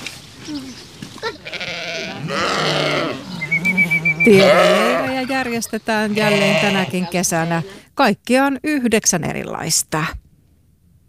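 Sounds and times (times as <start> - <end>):
speech: 0.5 - 1.4, 4.2 - 10.2
lamb bleating at an animal park: 1.2 - 7.8.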